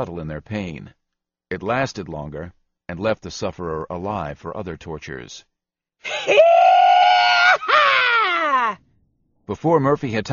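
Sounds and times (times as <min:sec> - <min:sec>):
speech: 0:00.0 - 0:06.4, 0:09.5 - 0:10.3
woman screaming: 0:06.1 - 0:08.8.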